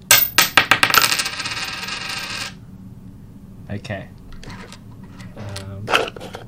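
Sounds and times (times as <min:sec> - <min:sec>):
coin dropping into money bank: 0:00.0 - 0:02.6
speech: 0:03.7 - 0:04.2.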